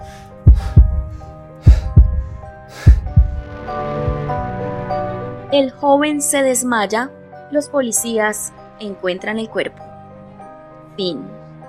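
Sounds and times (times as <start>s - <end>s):
heavy heartbeat thumping: 0.0s - 4.6s
low sustained droning hum: 3.0s - 5.5s
speech: 5.5s - 9.9s, 11.0s - 11.4s.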